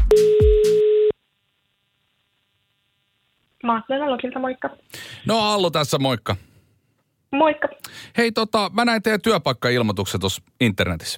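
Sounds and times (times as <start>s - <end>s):
telephone ringing tone while placing a call: 0.1s - 1.2s
speech: 3.7s - 6.5s, 7.3s - 11.1s.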